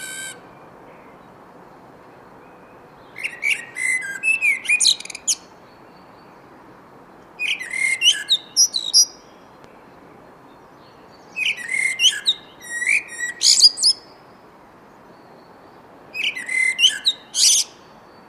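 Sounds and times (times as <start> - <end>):
common blackbird singing: 0.0 - 1.2, 2.5 - 5.5, 7.4 - 9.4, 10.5 - 14.0, 16.2 - 18.2
faint constant hiss: 0.0 - 18.2.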